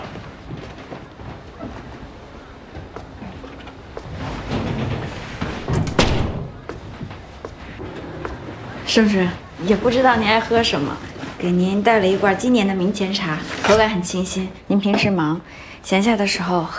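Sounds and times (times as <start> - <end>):
office door shutting with a heavy thump: 3.5 - 7.2
speech: 9.0 - 16.7.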